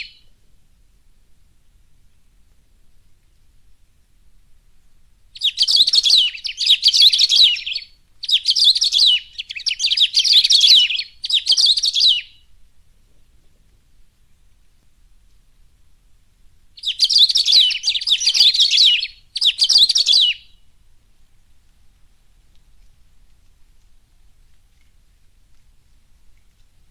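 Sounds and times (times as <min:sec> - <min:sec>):
Saffron-billed sparrow singing rapid tangled twittering phrases: 0:00.0 - 0:00.3, 0:05.4 - 0:12.5, 0:16.8 - 0:20.6.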